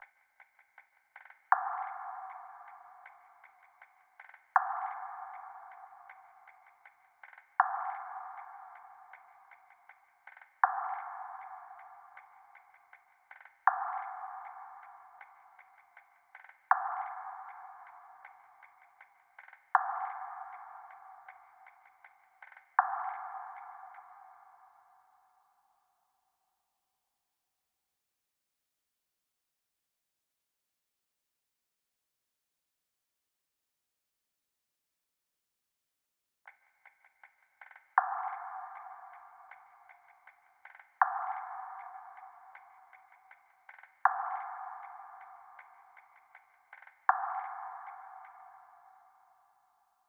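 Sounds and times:
158 BPM B minor RnB percussion loop: 0:00.0 - 0:24.4, 0:36.5 - 0:49.4.

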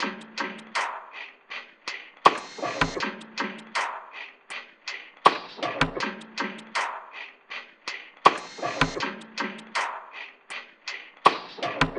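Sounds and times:
snow percussion loop: 0:00.0 - 0:11.9.

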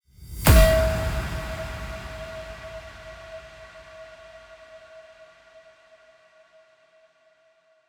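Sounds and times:
resonant house impact effect in E: 0:00.3 - 0:04.2.

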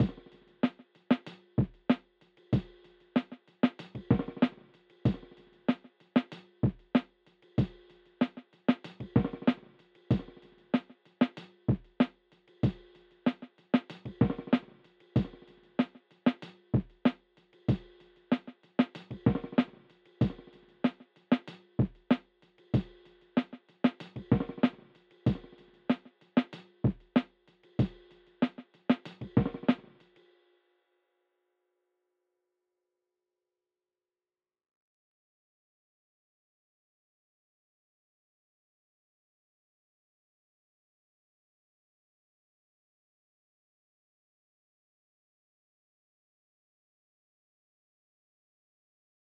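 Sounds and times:
95 BPM G minor drum loop: 0:00.0 - 0:30.0.

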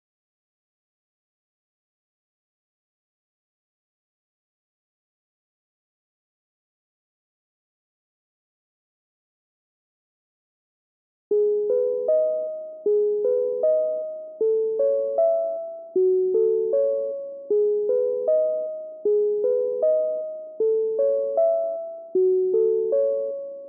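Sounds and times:
Jupiter-8 synth pluck loop in G sharp minor: 0:11.4 - 0:23.6.

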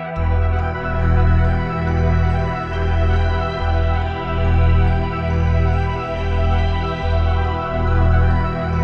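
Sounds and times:
music loop in E minor at 140 BPM: 0:00.2 - 0:08.7.

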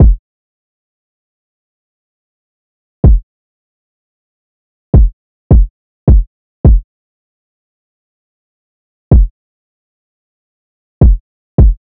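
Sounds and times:
hip hop drum loop at 158 BPM: 0:00.0 - 0:00.2, 0:03.0 - 0:03.2, 0:05.0 - 0:06.8, 0:09.1 - 0:09.3, 0:11.0 - 0:11.8.

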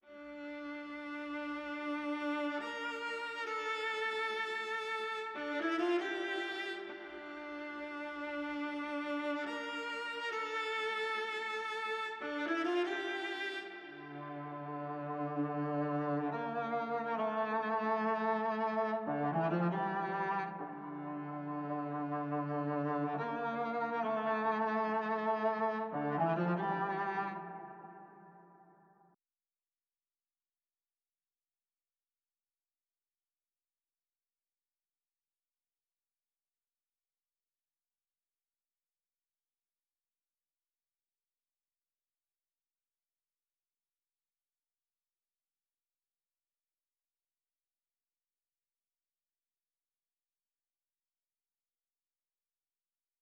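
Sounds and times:
violin melody in D minor for drill music: 0:00.1 - 0:28.7.

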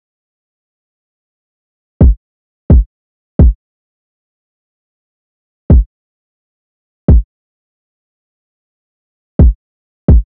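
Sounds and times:
kick drum loop: 0:02.0 - 0:02.8, 0:09.4 - 0:10.3.

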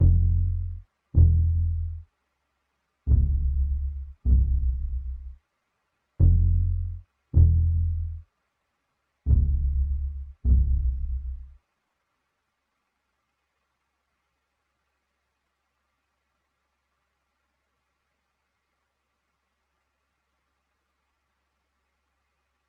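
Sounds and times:
bass loop in F minor: 0:00.0 - 0:02.0, 0:03.1 - 0:05.4, 0:06.2 - 0:08.2, 0:09.3 - 0:11.6.

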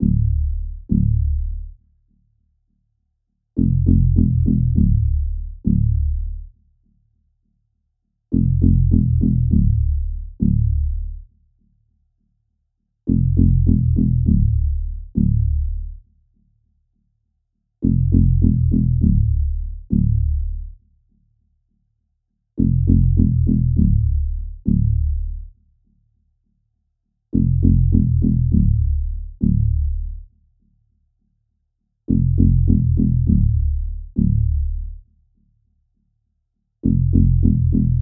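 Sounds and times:
bass line in D minor: 0:00.0 - 0:01.7, 0:03.6 - 0:06.3, 0:08.4 - 0:11.1, 0:13.1 - 0:15.9, 0:17.8 - 0:20.6, 0:22.6 - 0:25.4, 0:27.4 - 0:30.2, 0:32.1 - 0:35.0, 0:36.8 - 0:37.9.

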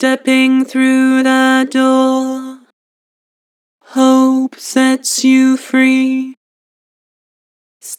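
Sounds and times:
person singing: 0:00.0 - 0:02.7, 0:03.8 - 0:06.4.

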